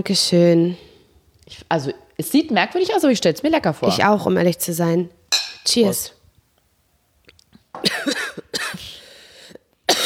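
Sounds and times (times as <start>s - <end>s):
speech: 0.0s - 0.9s, 1.5s - 6.2s
person coughing harshly: 7.8s - 9.0s, 9.9s - 10.0s.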